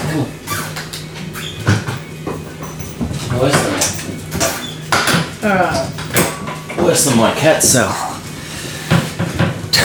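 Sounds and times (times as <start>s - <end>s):
speech: 0.1s - 0.4s, 3.4s - 4.0s, 6.9s - 8.1s
dog rummaging inside a food cupboard: 1.3s - 7.0s.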